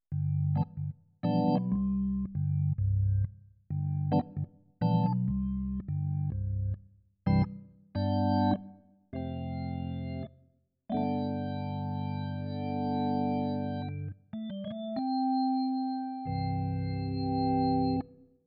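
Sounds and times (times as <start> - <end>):
CN34 organ: 0.2 - 2.8, 3.9 - 6.3, 7.3 - 8.6, 9.2 - 10.3, 10.9 - 18.0.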